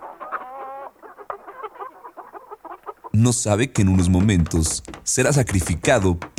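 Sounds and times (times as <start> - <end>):
turkey clucking calmly: 0.0 - 6.3
speech: 3.2 - 6.3.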